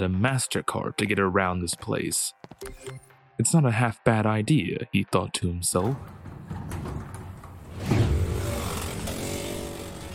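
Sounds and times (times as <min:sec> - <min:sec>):
speech: 0:00.0 - 0:06.2
go-kart tires screeching: 0:07.4 - 0:10.1
go-kart engine revving: 0:07.7 - 0:10.1.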